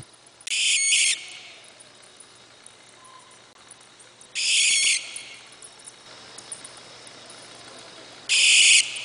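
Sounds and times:
barn owl Tyto furcata giving harsh hissing screeches: 0.5 - 1.7, 4.4 - 5.6, 8.3 - 9.0.

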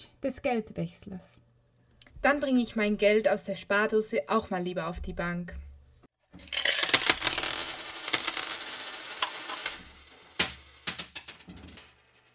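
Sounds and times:
speech: 0.2 - 1.5, 2.2 - 5.6
Italian 1-euro coin clattering on a hard floor: 6.4 - 12.3.

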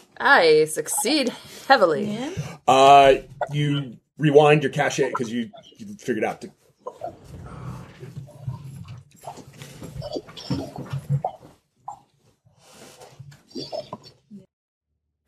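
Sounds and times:
speech: 0.2 - 7.4
dog whimpering and whining: 6.8 - 7.7, 10.0 - 11.4, 13.5 - 14.1.

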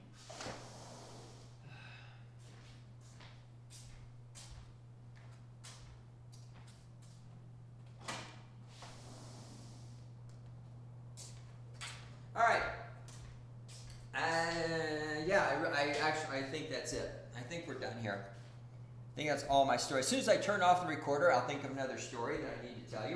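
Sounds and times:
steady low electrical hum: 0.0 - 23.1
door opening with a clunk, rattling and sliding: 8.0 - 9.1
speech: 15.3 - 18.4, 19.2 - 23.1.

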